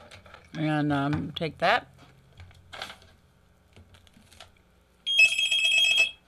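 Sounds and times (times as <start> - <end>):
speech: 0.6 - 1.9
telephone ringing with incoming call to a radio call-in broadcast: 5.1 - 6.2.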